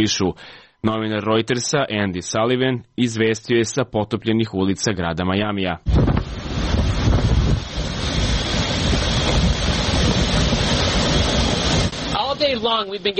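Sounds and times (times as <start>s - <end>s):
speech: 0.0s - 6.2s, 12.6s - 13.1s
heavy rain in a storm in Miami Florida: 5.9s - 13.0s
strong wind in a storm in Miami Florida: 5.9s - 13.0s.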